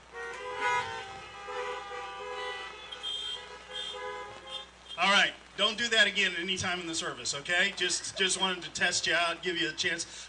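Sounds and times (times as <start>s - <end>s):
car horns honking from parked audience: 0.0s - 5.3s
speech: 5.7s - 10.2s.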